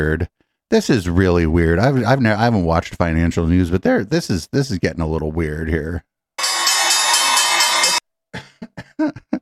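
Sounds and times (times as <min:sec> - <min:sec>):
speech: 0:00.0 - 0:06.1, 0:09.0 - 0:09.2
stock exchange opening bell ringing: 0:06.4 - 0:08.0.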